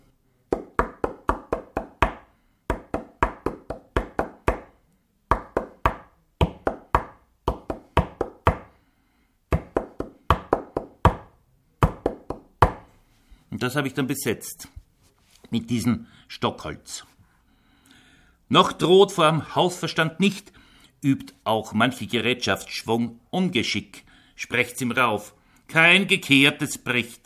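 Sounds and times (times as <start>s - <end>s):
rhythmic knocking on a hard surface tapping out a metre: 0.5s - 4.7s, 5.3s - 8.7s, 9.5s - 12.8s
speech: 13.6s - 14.8s, 15.5s - 17.1s, 18.5s - 27.2s.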